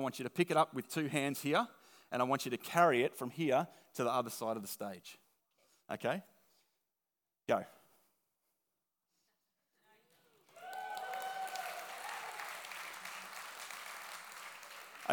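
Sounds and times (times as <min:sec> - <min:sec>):
speech: 0:00.0 - 0:05.2, 0:05.9 - 0:06.3, 0:07.5 - 0:07.8
audience clapping: 0:10.1 - 0:15.1
people cheering: 0:10.4 - 0:15.1.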